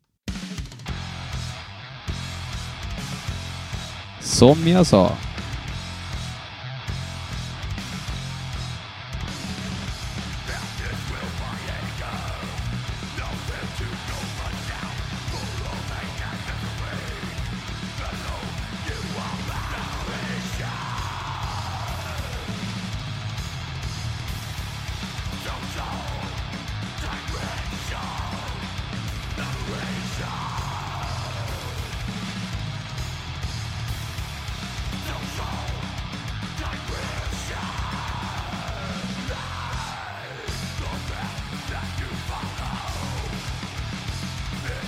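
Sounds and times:
band playing a loud dense rock song with driving guitar riff: 0.4s - 44.8s
sung vocals: 4.2s - 5.2s, 10.4s - 22.8s, 25.3s - 32.1s, 34.9s - 43.7s, 44.5s - 44.8s
speech: 4.2s - 5.3s.

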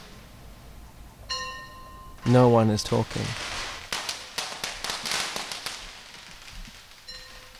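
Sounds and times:
firecrackers and bangers going off amid a crowd: 0.0s - 0.4s, 2.2s - 7.5s
speech: 2.3s - 3.5s.

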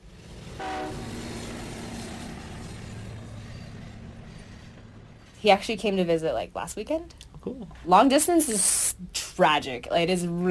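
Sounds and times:
rolling rail noise: 0.0s - 7.0s
train rumbling past: 0.0s - 7.0s
short train horn blast: 0.6s - 1.5s
speech: 5.4s - 10.5s.

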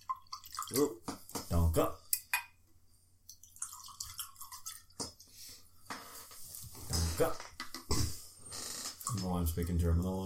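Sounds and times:
liquid pouring into a glass: 0.0s - 1.0s, 3.3s - 5.2s
liquid dripping: 0.0s - 1.5s, 3.2s - 5.3s
speech: 0.7s - 2.0s, 7.2s - 7.5s, 9.2s - 10.2s.

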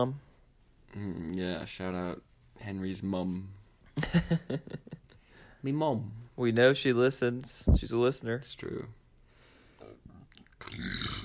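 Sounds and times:
speech: 0.0s - 0.3s, 0.9s - 5.0s, 5.6s - 9.0s
short low guttural burp: 9.8s - 11.2s.

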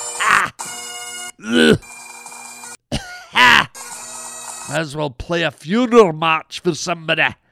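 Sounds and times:
speech: 0.4s - 0.8s, 1.4s - 1.9s, 4.7s - 7.4s
man coughing with a rasping wheezing pitch: 2.9s - 3.7s.

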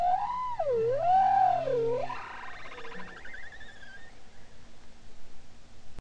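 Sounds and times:
bowhead whale song at Spitsbergen: 0.0s - 4.5s
low hum: 0.0s - 5.9s.

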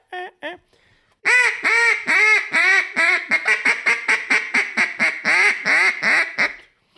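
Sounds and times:
speech: 0.4s - 0.9s
hen quacks blown on a duck call: 1.2s - 6.7s.

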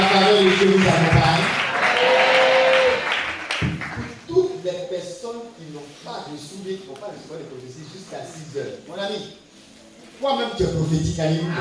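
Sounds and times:
congregation clapping at a religious retreat: 0.0s - 4.5s
speech: 0.6s - 1.5s, 5.7s - 9.4s, 10.2s - 11.6s.

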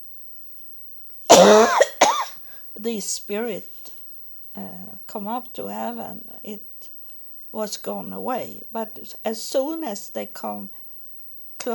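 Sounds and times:
person coughing: 1.3s - 2.3s
speech: 2.8s - 3.8s, 4.6s - 10.8s.

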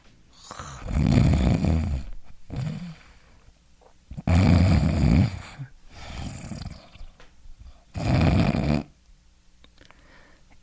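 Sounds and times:
voice imitating loud rough snoring: 0.4s - 3.0s, 4.2s - 6.9s, 7.9s - 8.9s.

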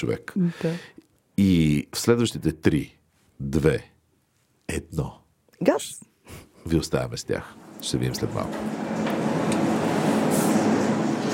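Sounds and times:
speech: 0.0s - 3.9s, 4.7s - 9.0s
refrigerator humming in a wholesale store: 7.6s - 11.3s.

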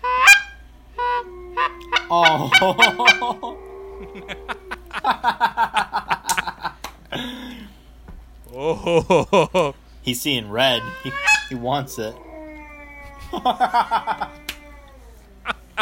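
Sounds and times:
goose call honking: 0.0s - 3.5s, 10.6s - 11.8s
speech: 2.1s - 6.1s, 8.6s - 12.2s, 13.3s - 14.4s
laughter: 2.1s - 7.6s, 8.5s - 9.8s, 13.1s - 14.6s, 15.4s - 15.7s.

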